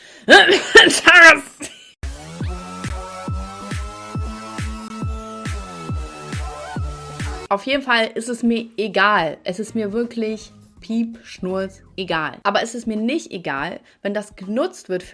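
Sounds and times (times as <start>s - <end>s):
speech: 0.2s - 1.8s, 7.5s - 15.1s
person coughing: 0.3s - 1.8s
rhythmic music track with a regular thumping beat: 2.0s - 7.5s.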